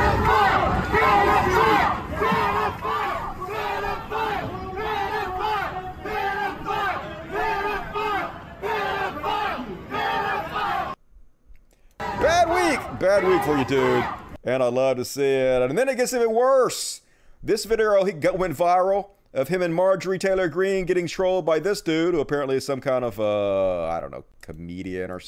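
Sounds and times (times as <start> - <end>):
large crowd chanting in unison at a rally: 0.0 - 11.0, 12.0 - 14.4
speech: 13.1 - 25.2.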